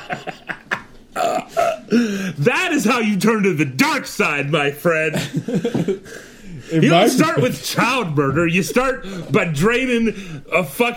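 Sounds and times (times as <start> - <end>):
laughter: 0.0 - 1.4, 5.0 - 7.8
speech: 0.1 - 0.5, 1.9 - 10.9
throaty burps: 1.2 - 2.0.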